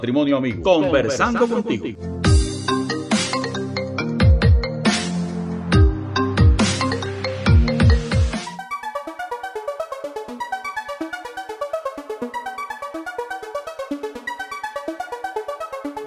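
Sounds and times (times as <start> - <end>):
speech: 0.0 - 2.2
laughter: 0.8 - 2.0
punchy percussive musical hits: 1.1 - 8.6.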